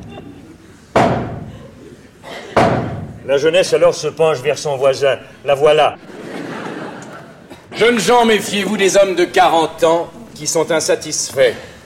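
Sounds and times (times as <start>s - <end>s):
laughter: 0.0s - 2.6s, 5.7s - 10.4s
stage manager's heavy booming knocks before the curtain rises in a theatre: 0.9s - 1.6s, 2.6s - 3.2s
speech: 3.3s - 6.1s, 7.8s - 11.7s.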